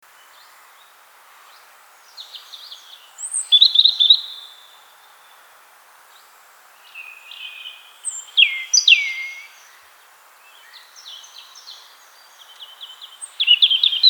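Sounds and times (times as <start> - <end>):
European robin Erithacus rubecula singing whistles and trills: 3.2 - 4.8, 6.9 - 9.8, 12.4 - 14.0.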